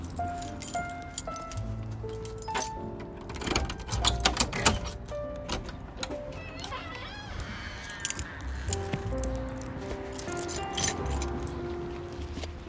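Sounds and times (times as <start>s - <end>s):
keys jangling and clinking: 0.0s - 6.7s, 7.7s - 12.6s
key tried in a closed door lock with scraping and clicking: 0.0s - 6.9s, 7.6s - 11.5s.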